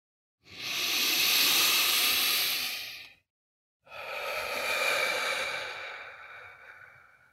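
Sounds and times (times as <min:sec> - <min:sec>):
deep breathing in through the nose and out through the mouth: 0:00.5 - 0:03.2, 0:03.9 - 0:07.3.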